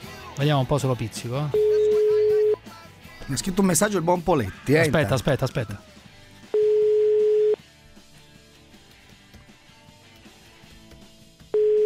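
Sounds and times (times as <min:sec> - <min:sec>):
speech: 0:00.4 - 0:01.7, 0:03.3 - 0:06.0
telephone ringing tones on an unanswered call: 0:01.5 - 0:02.6, 0:06.6 - 0:07.6, 0:11.6 - 0:11.8.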